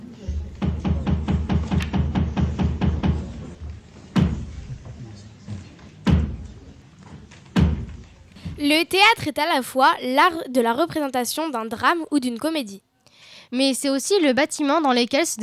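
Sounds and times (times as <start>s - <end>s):
low murmur of voices: 0.0s - 8.3s
wooden knocks on a floor: 0.3s - 8.7s
loud slow thuds announcing a theatre performance: 0.3s - 8.8s
speech: 8.7s - 12.9s, 13.5s - 15.4s.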